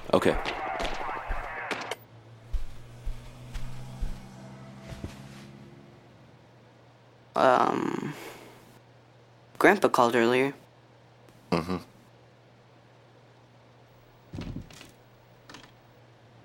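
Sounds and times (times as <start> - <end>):
speech: 0.1 - 0.6, 7.4 - 8.3, 9.6 - 10.6, 11.5 - 11.9
gunfire in a war video game set in Iraq: 0.2 - 2.0.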